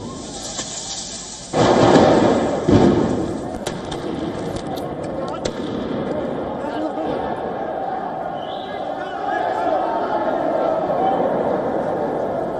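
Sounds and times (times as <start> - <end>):
firecracker bangs at a street protest: 0.0 - 4.8, 5.4 - 6.6
sharp cracks: 0.0 - 6.5
noisy crowd shouting outdoors at a street protest: 5.8 - 12.5.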